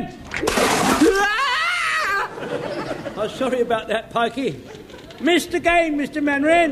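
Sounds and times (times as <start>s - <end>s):
water thrown at a chimney splashing: 0.3s - 1.3s
laughter: 0.8s - 5.3s
speech: 2.5s - 6.7s.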